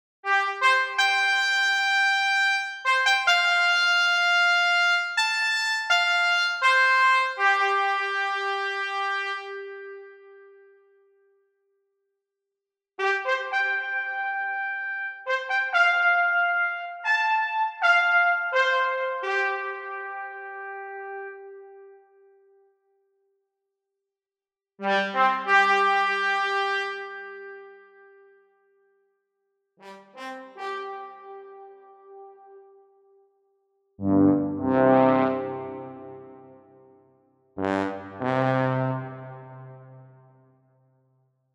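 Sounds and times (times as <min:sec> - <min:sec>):
imitative horn: 0:00.3 - 0:10.7, 0:13.0 - 0:22.2, 0:24.8 - 0:28.1, 0:29.8 - 0:32.7, 0:34.0 - 0:37.0, 0:37.6 - 0:40.4.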